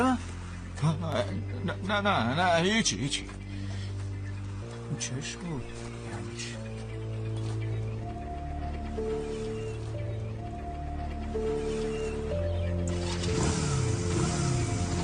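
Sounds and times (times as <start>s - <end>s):
speech: 0.0s - 3.4s, 4.9s - 6.6s, 9.0s - 9.4s
sustained tonal music: 0.0s - 15.0s
motorcycle engine starting and revving: 11.0s - 15.0s.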